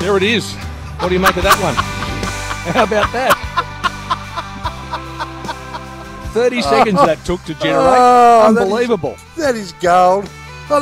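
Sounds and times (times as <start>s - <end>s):
speech: 0.0s - 1.9s, 2.6s - 3.7s, 6.3s - 10.8s
continuous low rumbling drone: 0.8s - 6.4s
laughter: 0.9s - 8.7s
duck quacking in short nasal calls: 1.0s - 6.0s.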